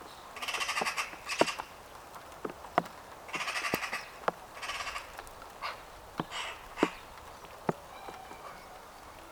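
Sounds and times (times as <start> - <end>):
Eurasian magpie Pica pica harsh rattling chatter: 0.4 - 1.7, 3.3 - 9.3.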